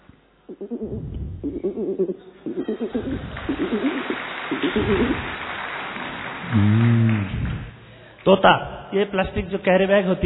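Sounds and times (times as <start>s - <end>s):
voice imitating pigeon cooing: 0.5s - 5.4s, 6.5s - 7.6s
speech: 0.6s - 5.3s, 6.5s - 7.4s, 8.2s - 10.2s.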